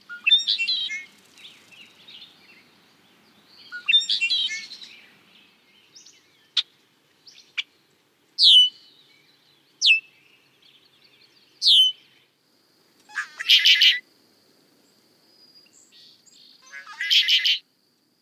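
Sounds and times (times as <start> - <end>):
male red-winged blackbird territorial chirps and buzzy trills: 0.0 - 7.7, 8.4 - 12.2, 15.4 - 17.6.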